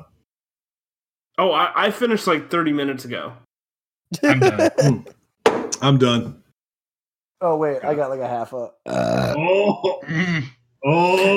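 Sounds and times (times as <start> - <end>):
speech: 1.4 - 3.4, 4.1 - 5.2, 5.8 - 6.4, 7.4 - 11.3
laughter: 4.1 - 5.2
person belching into the microphone: 8.8 - 11.3.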